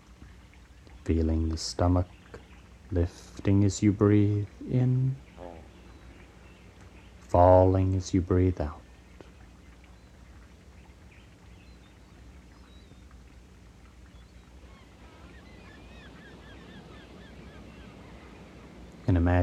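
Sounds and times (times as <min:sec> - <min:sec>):
birds calling and chirping: 0:00.2 - 0:19.4
speech: 0:01.0 - 0:02.2, 0:02.9 - 0:05.2, 0:07.3 - 0:08.8
ocean surf: 0:14.6 - 0:19.4.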